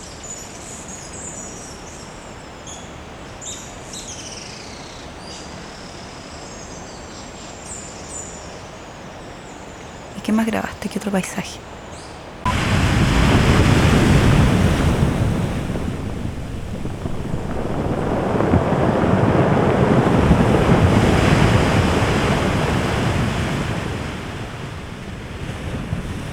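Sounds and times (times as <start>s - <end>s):
speech: 10.3s - 11.8s
heavy storm surf crashing against coastal rocks: 12.5s - 26.3s
gusty wind buffeting the microphone: 12.6s - 26.3s.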